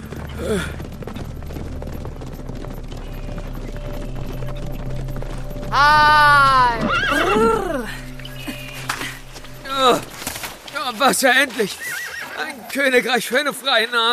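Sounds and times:
speech: 0.4s - 0.9s, 5.7s - 8.0s, 10.9s - 11.9s, 12.7s - 14.1s
horse whinnying: 6.7s - 7.6s, 11.6s - 12.7s.

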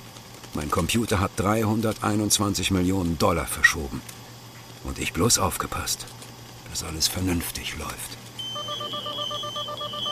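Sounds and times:
speech: 0.6s - 4.2s, 4.8s - 8.2s
rapid high-pitched electronic beeping: 8.4s - 10.1s.

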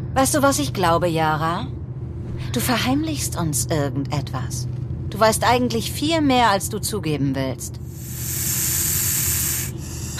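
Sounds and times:
speech: 0.2s - 1.8s, 2.4s - 8.6s
snake hissing: 7.9s - 10.1s.

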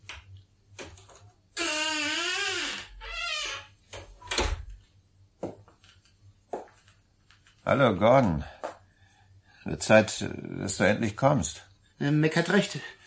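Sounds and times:
door hinges creaking: 1.6s - 4.8s
speech: 7.7s - 8.6s, 9.6s - 13.0s.

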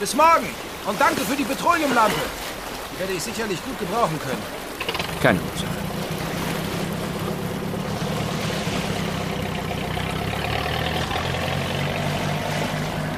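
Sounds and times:
speech: 0.0s - 4.6s, 5.2s - 5.9s
water wash: 0.0s - 13.1s
motorboat engine pulling away: 4.4s - 13.1s.

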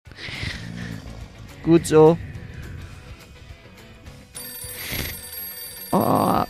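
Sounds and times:
speech: 1.6s - 2.3s
telephone ringing electronically: 4.3s - 6.4s.

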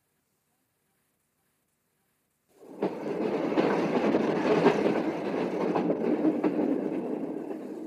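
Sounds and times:
old train carriage rumbling: 2.5s - 7.8s.

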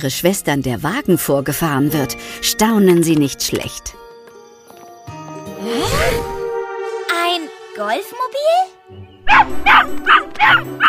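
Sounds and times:
speech: 0.0s - 4.0s, 7.8s - 10.8s
puppies yapping excitedly: 9.2s - 10.8s.

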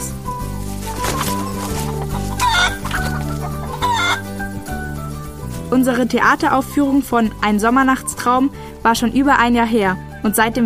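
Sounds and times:
hens clucking and squawking: 0.6s - 5.4s
speech: 5.7s - 10.6s.

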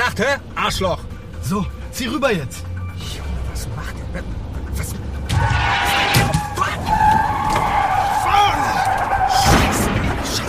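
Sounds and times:
speech: 0.2s - 2.7s, 3.7s - 5.6s
car tires skidding and squealing on the road: 5.2s - 10.4s.

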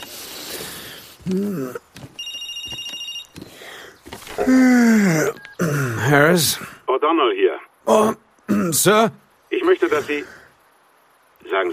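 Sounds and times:
speech: 1.3s - 2.0s, 4.5s - 5.3s, 6.1s - 10.4s, 11.4s - 11.7s
telephone ringing with a trilling bell: 2.0s - 3.6s, 5.3s - 5.7s.

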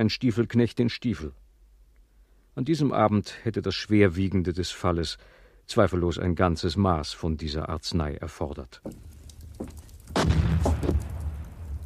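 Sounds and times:
speech: 0.0s - 1.4s, 2.6s - 11.0s
cannon shot firing: 10.1s - 11.8s.

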